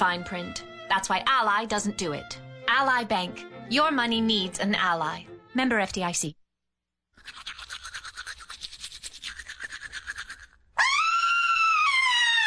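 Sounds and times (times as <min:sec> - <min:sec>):
speech: 0:00.0 - 0:06.4
brisk rhythmic toothbrush scrubbing: 0:07.2 - 0:10.7
woman screaming high-pitched on seeing pink in her sink: 0:10.8 - 0:12.4.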